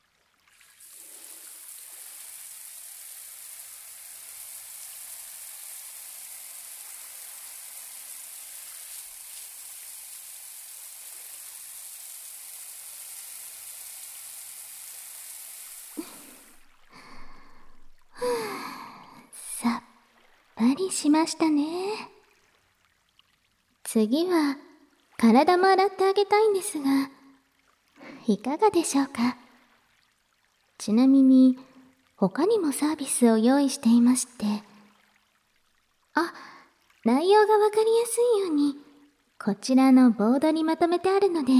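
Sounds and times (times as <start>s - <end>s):
water rinsing shampoo foam off hair: 0.0s - 18.5s
soft breathy sounds: 16.0s - 20.0s
speech: 20.7s - 22.1s, 24.0s - 24.6s, 25.2s - 27.2s, 28.2s - 29.4s, 30.8s - 34.7s, 37.0s - 38.8s, 39.4s - 41.5s.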